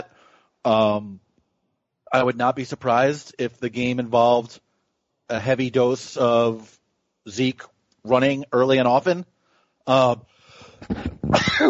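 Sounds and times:
speech: 0:00.6 - 0:01.2, 0:02.1 - 0:04.6, 0:05.3 - 0:11.6
person sneezing: 0:10.9 - 0:11.6.

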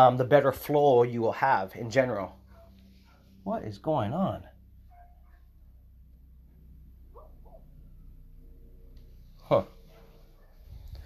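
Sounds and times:
speech: 0:00.0 - 0:02.4, 0:03.4 - 0:04.5, 0:09.5 - 0:09.7
low steady rumble: 0:00.0 - 0:11.0
dog barking: 0:02.4 - 0:03.6, 0:04.9 - 0:05.7, 0:07.1 - 0:07.8, 0:09.5 - 0:11.0.

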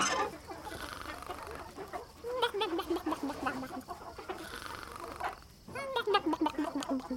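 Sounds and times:
faint farmyard background: 0:00.0 - 0:07.1
hens clucking in a chicken coop: 0:00.0 - 0:07.1.

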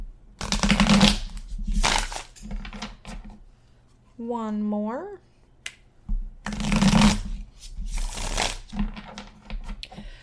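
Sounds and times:
tarot deck riffle-shuffled: 0:00.4 - 0:03.2, 0:06.4 - 0:09.8
speech: 0:04.2 - 0:05.3.

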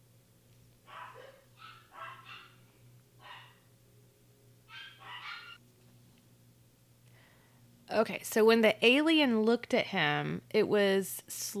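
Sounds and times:
steady low hum: 0:00.0 - 0:11.5
dog barking: 0:00.9 - 0:02.6, 0:03.2 - 0:03.7, 0:04.7 - 0:05.6
speech: 0:07.9 - 0:11.5.

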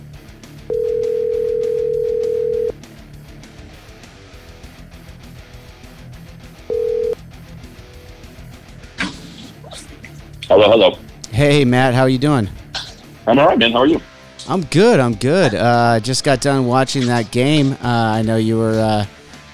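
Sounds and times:
phone ringback tone of a call being placed: 0:00.7 - 0:02.7, 0:06.7 - 0:07.2
speech: 0:10.6 - 0:12.6, 0:13.3 - 0:19.2.

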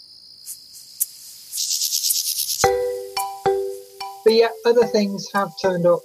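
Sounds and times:
mole cricket churring: 0:00.0 - 0:06.0
speech: 0:04.3 - 0:06.0.

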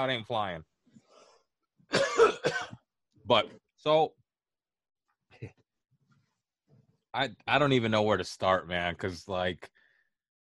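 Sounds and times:
speech: 0:00.0 - 0:00.7, 0:01.9 - 0:02.6, 0:03.3 - 0:04.2, 0:07.1 - 0:09.8
rough raspy phlegmy cough: 0:01.9 - 0:02.8.

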